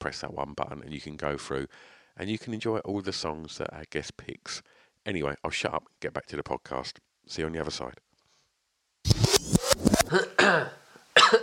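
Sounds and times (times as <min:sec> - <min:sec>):
speech: 0:00.0 - 0:08.0, 0:10.1 - 0:11.4
person coughing: 0:10.1 - 0:11.4
raspy throat-clearing: 0:10.1 - 0:11.4.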